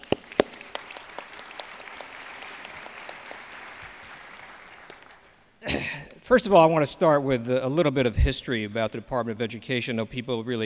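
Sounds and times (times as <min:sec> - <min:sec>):
audience clapping: 0:00.0 - 0:05.5
speech: 0:05.9 - 0:10.6.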